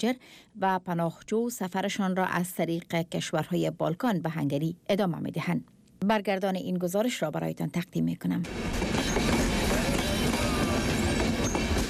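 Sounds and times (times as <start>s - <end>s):
speech: 0.0s - 9.0s
train wheels rumbling on tracks: 8.4s - 11.8s
train wheel metallic squeals: 8.9s - 11.8s.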